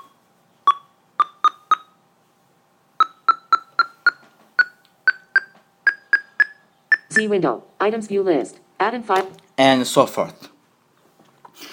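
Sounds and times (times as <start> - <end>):
short electronic beeps from screen reader progress bar updates: 3.0 - 7.3
speech: 7.2 - 10.5.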